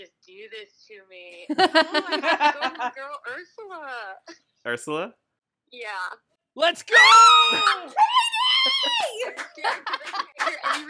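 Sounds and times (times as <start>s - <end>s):
speech: 0.4s - 10.8s
people giggling: 1.5s - 3.0s, 8.4s - 10.8s
people screaming and squealing with excitement: 6.9s - 9.2s.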